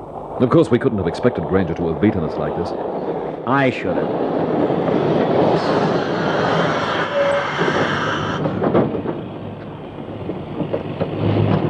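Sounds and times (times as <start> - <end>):
city train roar of engine and wheels: 0.0 - 11.6
speech: 0.4 - 4.9, 5.6 - 6.7.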